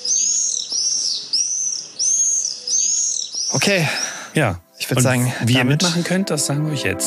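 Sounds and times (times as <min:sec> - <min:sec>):
common swifts screaming calls: 0:00.0 - 0:05.0
speech: 0:03.5 - 0:07.0.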